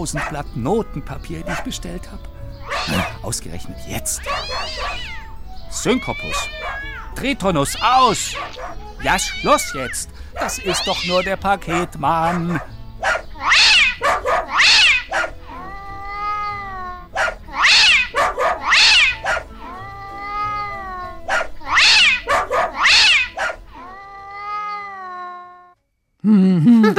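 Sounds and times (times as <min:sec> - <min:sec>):
dog barking: 0:00.0 - 0:00.5, 0:01.4 - 0:01.7, 0:02.6 - 0:03.2, 0:04.2 - 0:05.1, 0:06.3 - 0:06.8, 0:08.2 - 0:08.9, 0:11.7 - 0:15.4, 0:17.1 - 0:19.5, 0:21.3 - 0:23.7
speech: 0:00.0 - 0:05.1, 0:05.7 - 0:12.7
cat hissing: 0:02.6 - 0:03.2, 0:04.2 - 0:05.2, 0:06.0 - 0:07.1, 0:07.7 - 0:12.4, 0:13.4 - 0:16.4, 0:17.2 - 0:19.9, 0:20.5 - 0:23.9
laughter: 0:26.6 - 0:26.9.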